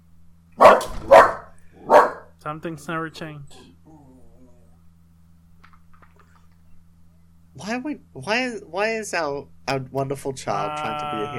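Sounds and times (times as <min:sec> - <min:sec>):
faint low hum: 0:00.0 - 0:11.3
dog barking at other dogs: 0:00.6 - 0:02.4
speech: 0:02.5 - 0:03.7, 0:07.7 - 0:11.3.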